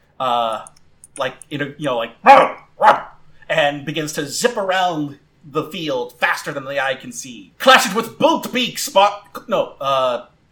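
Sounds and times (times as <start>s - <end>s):
speech: 0.2s - 10.3s
person imitating barks of a large fierce dog-like game creature: 2.2s - 3.2s.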